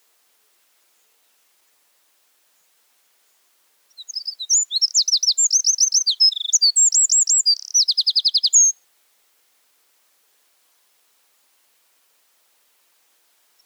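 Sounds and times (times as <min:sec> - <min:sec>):
Eurasian wren singing: 0:04.0 - 0:08.7.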